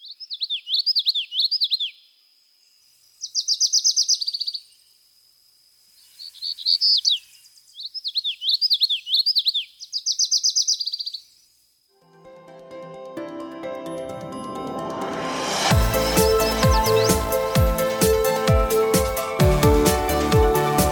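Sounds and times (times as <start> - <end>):
single bird singing high warbling phrases: 0.0 - 5.0, 6.0 - 11.5, 15.7 - 19.4
music: 12.0 - 20.8.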